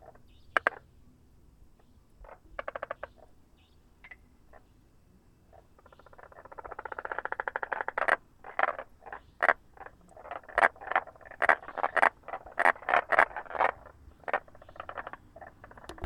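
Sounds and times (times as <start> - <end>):
frog calls as rapid rattling pulses: 0.0 - 0.8, 2.2 - 3.3, 5.5 - 16.0.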